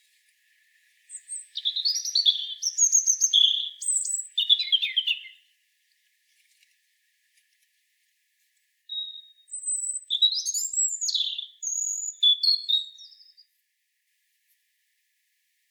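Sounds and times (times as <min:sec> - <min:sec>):
European robin Erithacus rubecula song of thin whistles and quick trills: 0:00.5 - 0:05.5, 0:08.9 - 0:13.5.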